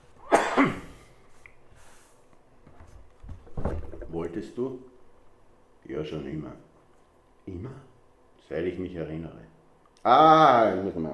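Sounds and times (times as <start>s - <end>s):
person coughing: 0.2s - 1.0s
speech: 0.6s - 0.9s, 4.4s - 4.9s, 5.9s - 6.7s, 7.5s - 7.9s, 8.5s - 11.1s.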